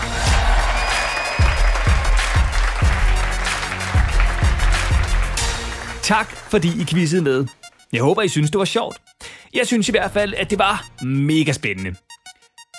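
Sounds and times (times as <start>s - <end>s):
small group clapping: 0.0s - 7.1s
speech: 6.1s - 12.0s.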